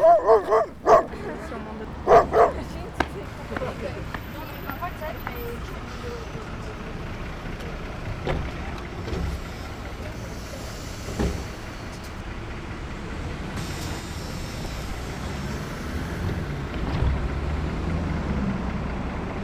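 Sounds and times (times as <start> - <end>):
dog barking: 0.0 - 3.0
laughter: 0.0 - 12.2
noisy outdoor background: 0.0 - 19.4.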